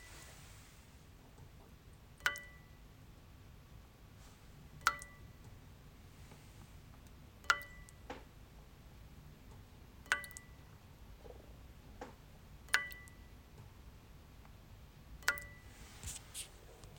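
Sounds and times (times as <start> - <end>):
water dripping into a metal bowl: 1.9 - 2.9, 4.7 - 5.5, 7.1 - 8.1, 10.0 - 10.8, 12.6 - 13.4, 15.2 - 15.7.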